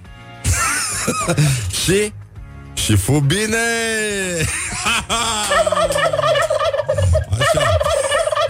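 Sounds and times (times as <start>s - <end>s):
laughter: 0.5s - 1.7s, 4.4s - 8.4s
speech: 1.1s - 2.2s, 2.9s - 6.5s
turkey gobbling: 5.4s - 8.4s.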